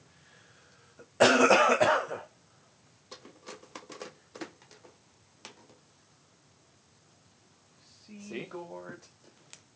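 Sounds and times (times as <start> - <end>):
wet cough into an old video game cartridge: 1.2 - 2.3
person speaking: 7.8 - 9.1.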